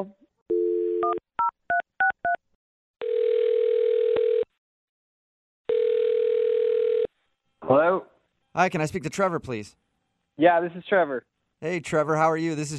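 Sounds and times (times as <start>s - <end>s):
speech: 0.0s - 0.2s, 7.7s - 9.8s, 10.4s - 12.7s
telephone dial tone: 0.5s - 1.2s, 3.0s - 4.5s, 5.7s - 7.1s.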